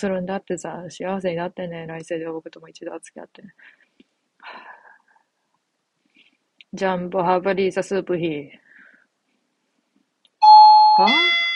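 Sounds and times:
speech: 0.0s - 4.7s, 6.7s - 8.6s, 11.0s - 11.4s
electronic doorbell chiming: 10.4s - 11.5s.

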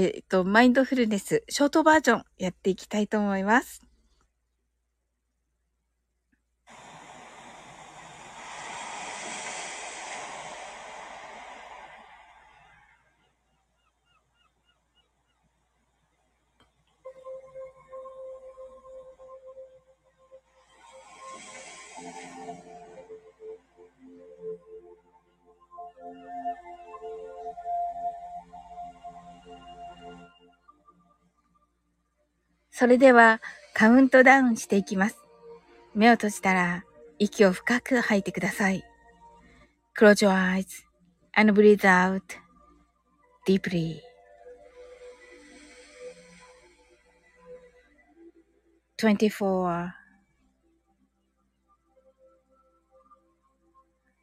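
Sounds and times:
speech: 0.0s - 3.8s, 32.8s - 35.2s, 36.0s - 38.9s, 40.0s - 42.4s, 43.4s - 44.1s, 49.0s - 50.0s
underwater ocean rushing wash: 6.7s - 13.1s
drawn-out tonal calls and murmurs underwater: 6.8s - 15.4s.

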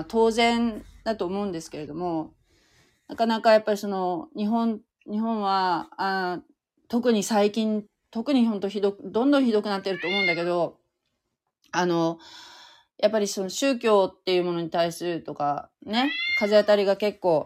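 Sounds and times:
speech: 0.0s - 2.4s, 3.1s - 10.8s, 11.7s - 17.4s
cat meowing: 9.8s - 10.6s, 16.0s - 16.7s.

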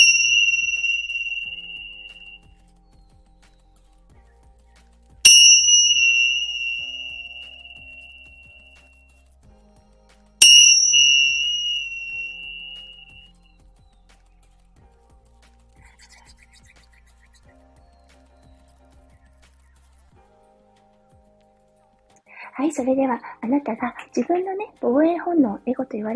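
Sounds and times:
Tibetan bell being struck: 0.0s - 2.4s, 5.3s - 8.7s, 10.4s - 13.2s
speech: 22.7s - 26.1s.

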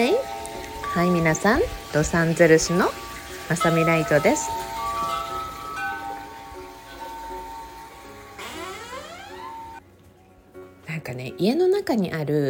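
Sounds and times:
speech: 1.0s - 4.7s, 11.4s - 12.4s
chime ringing outside a house: 3.6s - 9.8s.

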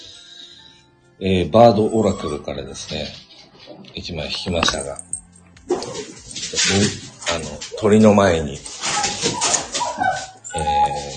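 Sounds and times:
speech: 1.2s - 5.1s, 5.8s - 11.1s
dog barking and fussing: 8.8s - 10.7s.

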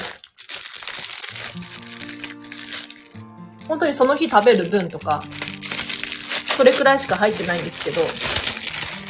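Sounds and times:
plastic packaging crinkling while putting things into a refrigerator: 0.0s - 9.0s
speech: 3.7s - 5.4s, 6.6s - 8.5s.

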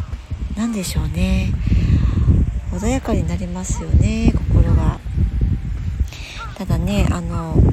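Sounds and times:
wind blowing outdoors by the sea: 0.0s - 7.7s
speech: 0.6s - 1.8s, 2.8s - 5.0s, 6.6s - 7.7s.

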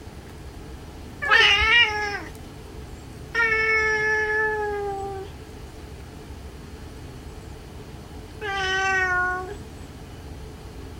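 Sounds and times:
tabby cat yowling in a fight: 1.2s - 2.3s, 3.4s - 5.3s, 8.4s - 9.6s.

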